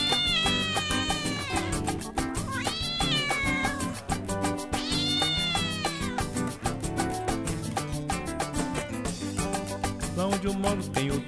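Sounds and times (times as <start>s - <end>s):
cat in heat yowling: 0.0s - 6.6s
steady loud rhythmic music beat: 0.0s - 11.2s
speech: 10.4s - 11.2s.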